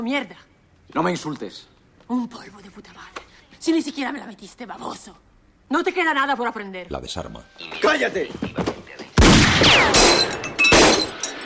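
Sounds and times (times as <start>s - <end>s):
speech: 0.0s - 8.7s
bullet ricocheting: 9.2s - 11.1s
dropped pistol firing: 9.2s - 11.2s.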